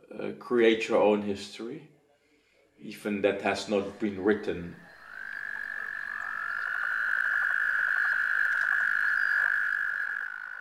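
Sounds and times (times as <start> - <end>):
speech: 0.4 - 1.9, 2.8 - 4.8
toads croaking during mating: 3.4 - 10.5.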